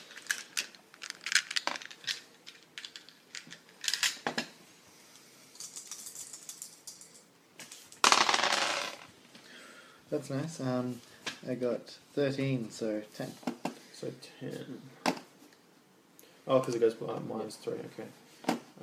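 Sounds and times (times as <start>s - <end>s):
dice rattling and clattering across a hard tabletop in a tabletop game: 0.1s - 4.2s, 5.6s - 9.1s
speech: 10.1s - 15.0s, 16.5s - 18.2s.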